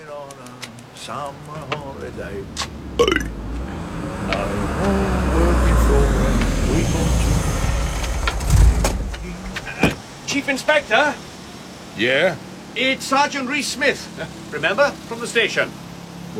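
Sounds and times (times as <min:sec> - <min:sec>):
car engine rumbling as it pulls up and idles: 0:00.0 - 0:10.2
speech: 0:01.0 - 0:03.4, 0:04.3 - 0:05.4, 0:10.3 - 0:11.3, 0:12.0 - 0:15.8.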